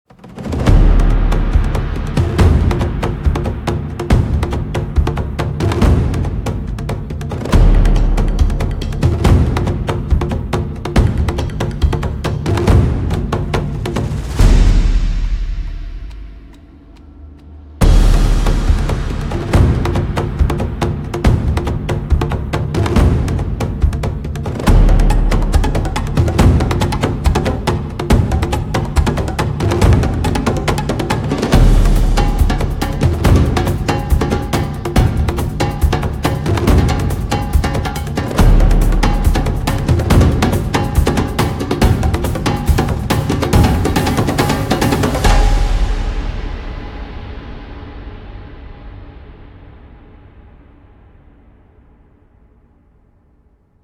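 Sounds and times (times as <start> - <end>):
combat music: 0.2 - 48.6.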